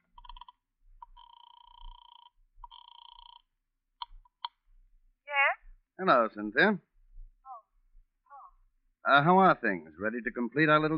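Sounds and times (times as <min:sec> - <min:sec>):
telephone dialing buzzing electronic tones: 0:00.0 - 0:03.5
speech: 0:06.0 - 0:06.9, 0:09.1 - 0:10.9.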